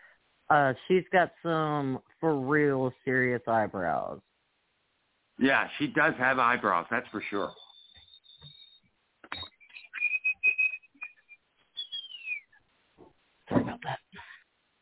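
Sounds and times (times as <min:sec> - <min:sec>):
speech: 0:00.5 - 0:04.3, 0:05.4 - 0:07.6
tea kettle whistling shrilly: 0:07.2 - 0:12.6.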